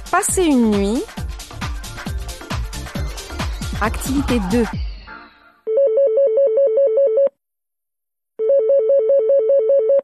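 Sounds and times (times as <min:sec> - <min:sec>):
speech: 0:00.1 - 0:01.2, 0:03.8 - 0:04.9
telephone ringing with electronic warbling trill: 0:05.7 - 0:07.3, 0:08.4 - 0:10.0.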